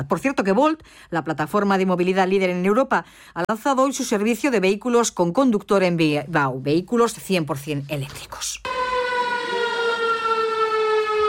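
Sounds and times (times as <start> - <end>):
speech: 0.0 - 8.8
civil defense siren wailing in Otxandio for the 90th anniversary of an air raid: 8.6 - 11.2.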